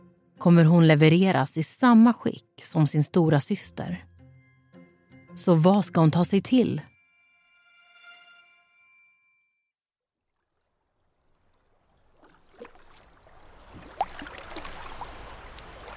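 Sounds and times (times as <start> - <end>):
speech: 0.4 - 4.1, 5.4 - 6.9
short ringing tone: 6.9 - 9.7
rowboat oar splashes in harbor water: 10.2 - 15.9
water lapping against small rowboat in harbor: 10.4 - 15.9.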